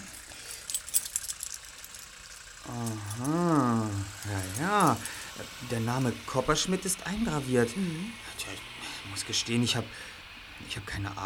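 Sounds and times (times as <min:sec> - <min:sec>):
small toy key being handled, jingling: 0:00.0 - 0:05.4
speech: 0:02.7 - 0:03.4, 0:05.7 - 0:11.2.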